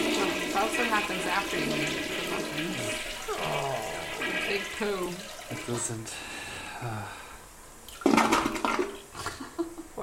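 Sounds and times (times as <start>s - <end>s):
toilet flush sound effect: 0.0s - 6.2s, 7.9s - 9.1s
speech: 0.6s - 7.2s.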